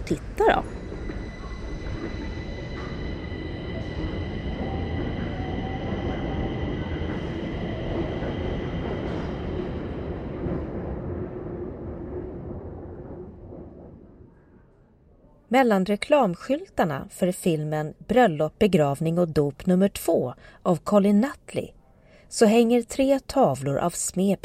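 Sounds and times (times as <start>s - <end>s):
subway train rumbling through a metro station: 0.0s - 15.4s
speech: 0.1s - 0.8s, 15.5s - 24.4s
high metallic whine of subway train: 0.5s - 9.6s.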